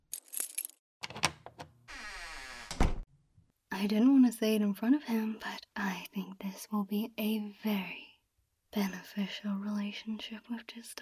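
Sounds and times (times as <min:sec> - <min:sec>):
key rattling and clicking in a locked door's lock: 0:00.1 - 0:01.3
door swinging open with a creaking scrape: 0:01.0 - 0:03.1
door thud: 0:02.7 - 0:03.1
speech: 0:03.8 - 0:08.0, 0:08.7 - 0:11.0.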